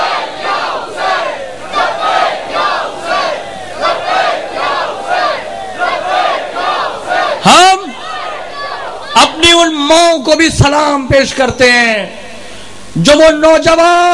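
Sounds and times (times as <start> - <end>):
large crowd chanting a religious slogan: 0.0 - 9.7
speech: 9.9 - 12.2, 13.0 - 14.1.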